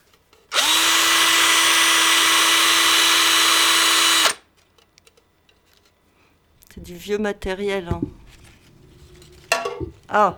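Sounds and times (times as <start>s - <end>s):
power drill running at a high-pitched whine: 0.5s - 4.4s
speech: 6.9s - 8.2s, 10.1s - 10.3s.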